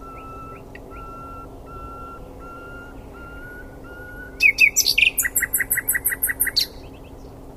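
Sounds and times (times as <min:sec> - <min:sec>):
common nightingale Luscinia megarhynchos song: 0:00.0 - 0:07.4.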